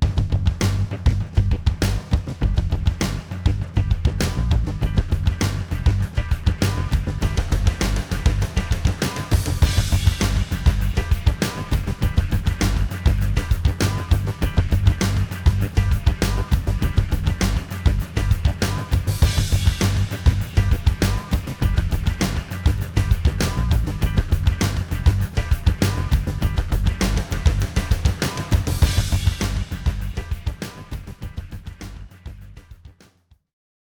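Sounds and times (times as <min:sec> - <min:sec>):
industrial rock music: 0:00.1 - 0:32.4.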